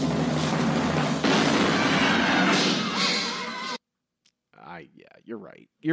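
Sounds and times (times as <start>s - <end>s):
cannon firing with a loud booming blast: 0.2s - 3.5s
speech: 5.3s - 5.9s.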